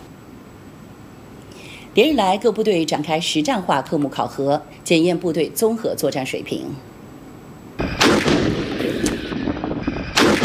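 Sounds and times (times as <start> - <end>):
speech: 2.0 - 6.9
tank guns firing live rounds at a desert gobi range: 7.8 - 10.4.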